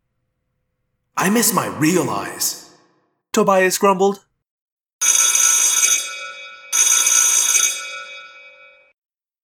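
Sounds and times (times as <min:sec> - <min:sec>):
speech: 0:01.2 - 0:02.6, 0:03.4 - 0:04.3
loud harsh metallic alarm bell ringing: 0:05.0 - 0:09.0.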